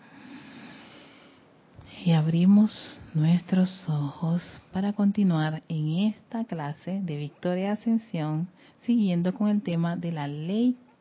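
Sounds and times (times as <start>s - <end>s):
long deep inhalation: 0.0s - 1.5s
speech: 2.0s - 10.8s.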